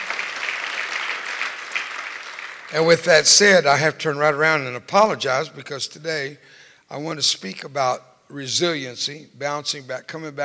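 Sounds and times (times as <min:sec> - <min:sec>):
audience clapping at a religious service: 0:00.0 - 0:03.2
speech: 0:02.7 - 0:10.4.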